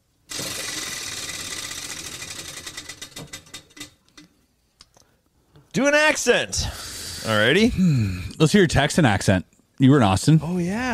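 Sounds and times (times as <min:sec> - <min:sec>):
prize wheel spinning and clicking: 0:00.3 - 0:04.3
speech: 0:05.8 - 0:10.9.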